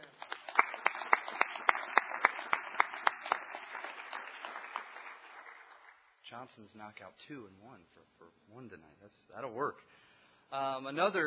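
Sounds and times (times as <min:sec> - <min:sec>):
audience applause for standing parents: 0:00.0 - 0:06.0
speech: 0:06.4 - 0:11.2.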